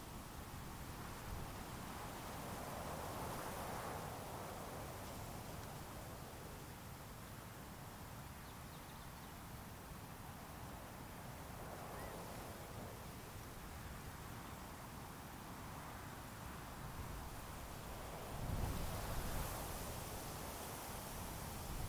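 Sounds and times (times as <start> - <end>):
wind through sagebrush in prairie grasses: 0.0 - 21.8.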